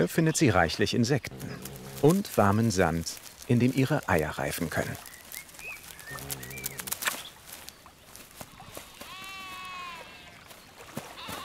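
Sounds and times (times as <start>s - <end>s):
speech: 0.0s - 5.1s
birds chirping: 0.0s - 11.4s
light rustling: 1.2s - 9.6s
grazing sheep bleating: 1.3s - 3.0s, 6.0s - 7.1s, 8.7s - 10.4s, 11.2s - 11.4s.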